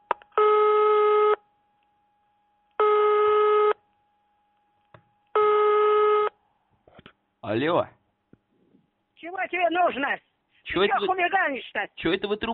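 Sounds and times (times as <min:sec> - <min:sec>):
telephone signal of an incoming long-distance call: 0:00.4 - 0:01.4, 0:02.8 - 0:03.8, 0:05.4 - 0:06.4
speech: 0:07.5 - 0:08.0, 0:09.5 - 0:12.5.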